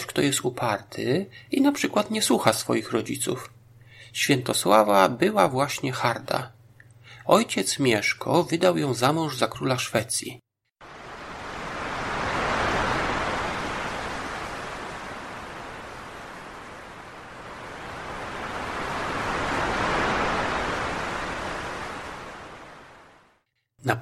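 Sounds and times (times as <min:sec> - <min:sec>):
speech: 0:00.2 - 0:06.6, 0:07.2 - 0:10.4
sea waves washing in: 0:10.8 - 0:23.5.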